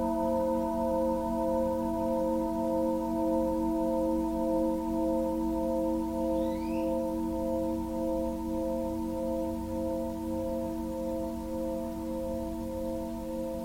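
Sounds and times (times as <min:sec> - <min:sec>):
Tibetan singing bowl ringing: 0:00.0 - 0:13.6
faint bird chirp: 0:06.2 - 0:07.2.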